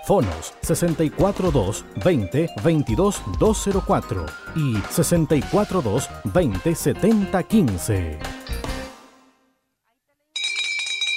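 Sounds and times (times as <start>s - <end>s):
speech: 0.1s - 8.4s
bright sustained clamor of ringing bells: 10.4s - 11.1s.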